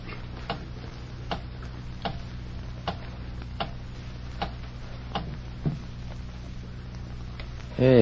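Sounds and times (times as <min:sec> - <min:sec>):
low hum: 0:00.0 - 0:08.0
clock ticking: 0:01.3 - 0:02.2, 0:02.8 - 0:03.8, 0:04.4 - 0:05.4
speech: 0:07.8 - 0:08.0.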